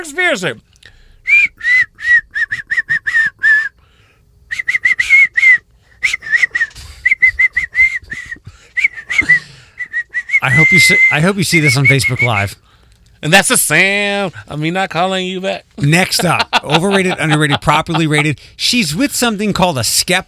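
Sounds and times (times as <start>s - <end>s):
speech: 0.0s - 0.7s, 10.4s - 12.6s, 13.2s - 20.2s
person whistling a tune: 1.3s - 3.8s, 4.5s - 11.1s
laughter: 15.8s - 18.4s.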